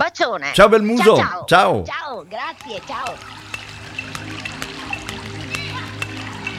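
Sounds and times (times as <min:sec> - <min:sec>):
speech: 0:00.2 - 0:03.5
clear water running: 0:02.0 - 0:06.5.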